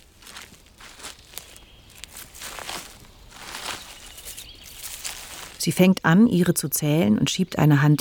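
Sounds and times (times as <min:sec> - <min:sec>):
footsteps crunching over leafy ground in a forest: 0:00.0 - 0:05.8
speech: 0:05.6 - 0:07.9.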